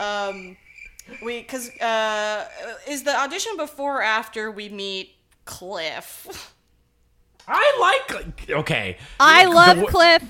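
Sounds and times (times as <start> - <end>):
cricket chirping sound effect: 0.0 - 2.8
speech: 0.0 - 6.6, 7.4 - 10.2.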